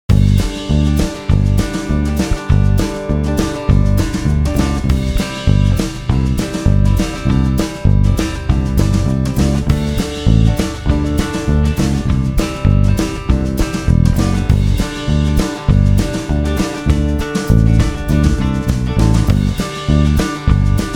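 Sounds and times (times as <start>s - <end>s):
chord scales country backing track: 0.1s - 20.9s.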